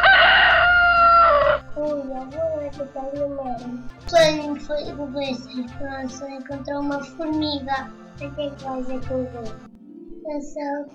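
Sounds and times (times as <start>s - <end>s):
rooster crowing: 0.0s - 1.7s
speech: 2.9s - 9.7s, 10.3s - 10.9s.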